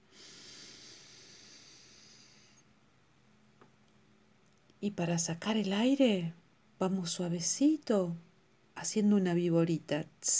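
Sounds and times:
slow deep inhale through the nose in a breathing exercise: 0.0 - 2.7
speech: 4.8 - 10.3.

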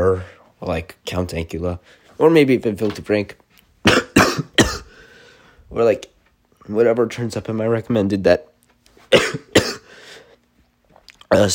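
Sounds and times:
speech: 0.1 - 4.0, 5.7 - 6.1, 6.7 - 8.5, 9.1 - 9.6, 11.3 - 11.5
person coughing with harsh breathy bursts: 3.8 - 5.0, 9.1 - 10.0.

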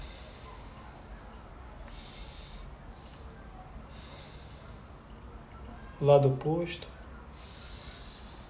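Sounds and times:
faint breaths during a guided neck-movement exercise: 0.0 - 5.4, 7.2 - 8.4
speech: 6.0 - 7.0.

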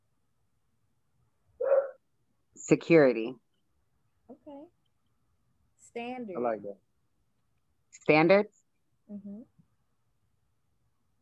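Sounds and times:
dog giving a short sharp bark: 1.6 - 2.0
speech: 2.7 - 3.4, 6.0 - 6.9, 8.0 - 9.6.

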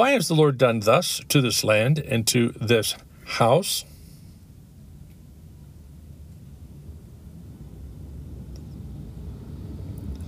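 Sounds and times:
speech: 0.0 - 3.9
cars passing by: 7.6 - 10.2.

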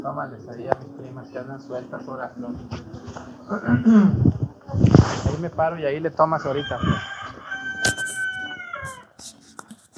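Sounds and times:
speech: 0.0 - 7.2
rooster crowing: 6.4 - 9.1.

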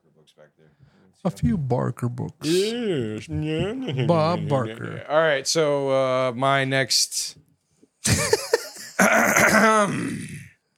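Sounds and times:
speech: 0.2 - 7.4, 8.0 - 10.3
person clearing throat: 2.4 - 5.0, 8.9 - 10.5
laughter: 2.4 - 5.1, 8.0 - 9.8.

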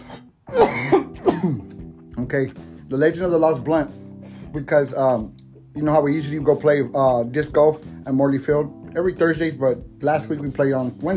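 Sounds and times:
rough raspy coughs: 0.0 - 1.8
throat clearing: 0.0 - 1.8
speech: 1.4 - 1.6, 2.3 - 11.1.

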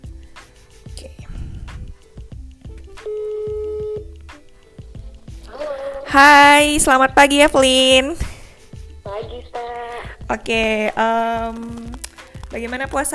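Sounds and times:
phone dialing clicks and beeps: 3.0 - 4.1
speech: 6.1 - 8.2, 10.3 - 11.8, 12.5 - 13.1.

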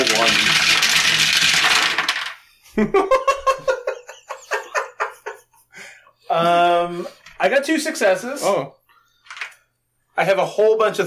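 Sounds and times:
handful of dice rattling: 0.0 - 2.4, 9.3 - 9.6
speech: 2.8 - 3.2, 7.4 - 8.8, 10.2 - 11.0
laughter: 2.8 - 5.7.

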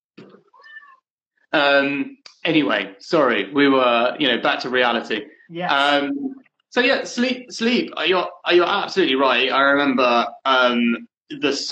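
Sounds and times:
cat meowing: 0.5 - 1.0
speech: 1.5 - 11.7.

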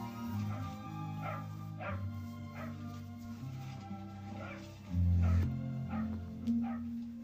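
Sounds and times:
dog barking in short yips and whimpering: 0.3 - 3.0, 4.2 - 7.0.

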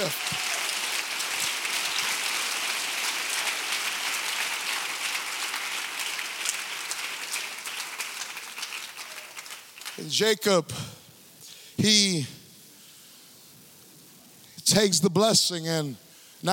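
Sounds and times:
crowd applauding: 0.0 - 10.2
speech: 10.0 - 11.0, 11.8 - 12.4, 14.8 - 16.5.

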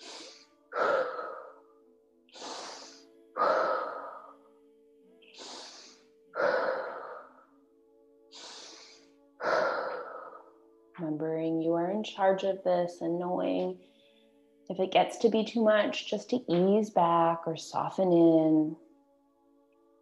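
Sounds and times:
forceful rhythmic breathing during a breathing exercise: 0.0 - 1.7, 2.3 - 4.5, 5.2 - 7.5, 8.3 - 10.6
speech: 11.0 - 13.9, 14.7 - 18.8.

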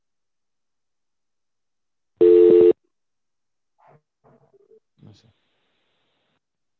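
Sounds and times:
steady electronic telephone tone: 2.2 - 2.8.

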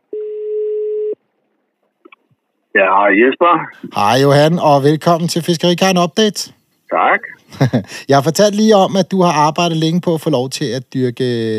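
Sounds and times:
telephone ringing while a call is placed: 0.1 - 1.2
speech: 2.8 - 11.5.

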